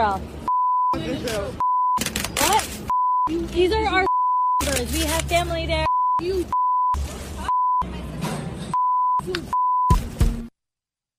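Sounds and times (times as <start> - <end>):
speech: 0.0 - 1.6, 2.5 - 4.1, 4.7 - 6.6
high-pitched censor bleeps: 0.4 - 1.0, 1.6 - 2.0, 2.9 - 3.4, 4.0 - 4.7, 5.8 - 7.9, 8.7 - 10.0.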